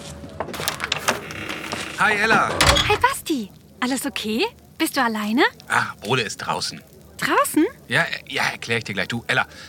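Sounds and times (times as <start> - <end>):
wooden door unlatching and swinging open: 0.5 - 3.2
speech: 2.0 - 9.6.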